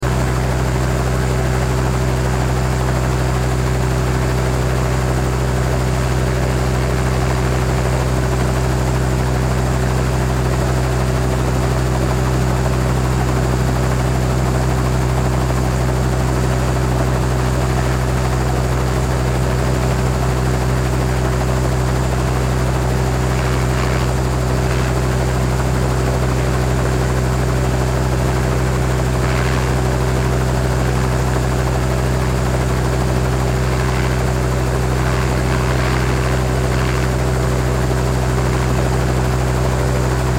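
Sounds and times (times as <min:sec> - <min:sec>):
helicopter exterior blade loop with engine: 0:00.0 - 0:40.3.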